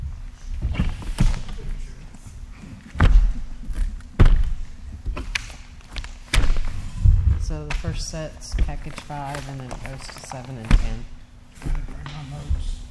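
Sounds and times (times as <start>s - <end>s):
little wooden chair being moved and set down: 2.9s - 9.2s, 10.6s - 12.8s
speech: 7.8s - 11.8s.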